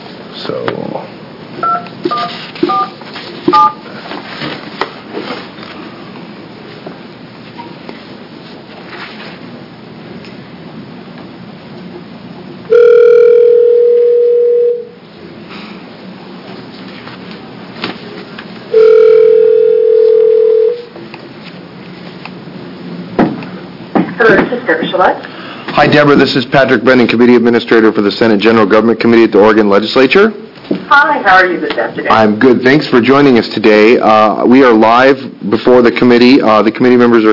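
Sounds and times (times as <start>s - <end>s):
low hum: 0.0s - 37.3s
speech: 0.4s - 1.2s, 24.7s - 25.3s, 25.9s - 37.3s
faint short telephone dialing beeps: 1.6s - 3.8s
loud steady telephone tones: 1.6s - 3.8s, 12.7s - 15.0s, 18.7s - 20.9s.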